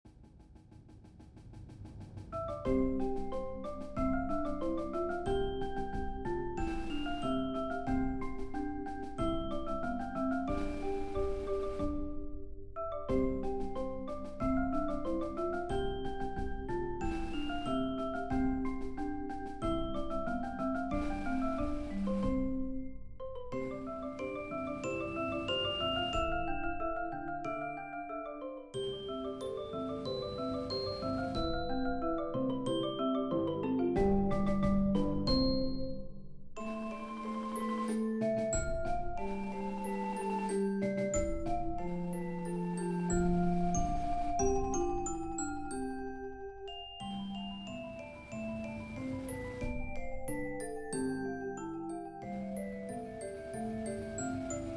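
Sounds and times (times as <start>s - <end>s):
snare drum in a percussion ensemble: 0.1s - 12.3s, 13.1s - 22.9s, 23.5s - 26.7s, 29.4s - 32.0s, 34.0s - 36.0s, 36.6s - 45.8s
timpani in a percussion ensemble: 0.1s - 27.0s, 28.8s - 32.2s, 34.0s - 36.0s, 36.6s - 45.7s
2 marimbas in a percussion ensemble: 2.3s - 54.7s
vibraphone in a percussion ensemble: 2.3s - 54.7s
bells in a percussion ensemble: 2.4s - 54.7s
xylophone in a percussion ensemble: 2.4s - 54.7s.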